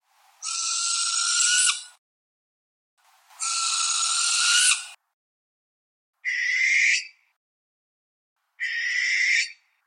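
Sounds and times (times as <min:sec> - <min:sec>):
barn owl screech calls: 0:00.4 - 0:02.0, 0:03.4 - 0:05.0, 0:06.2 - 0:07.2, 0:08.6 - 0:09.7.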